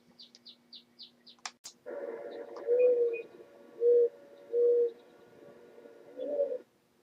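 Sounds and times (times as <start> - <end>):
background hum: 0.0 - 7.0
owl hooting: 2.1 - 6.7.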